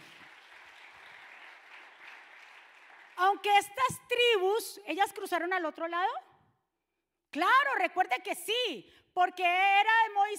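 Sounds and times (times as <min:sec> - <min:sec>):
audience clapping: 0:00.0 - 0:03.5
speech: 0:03.3 - 0:06.3, 0:07.3 - 0:10.3.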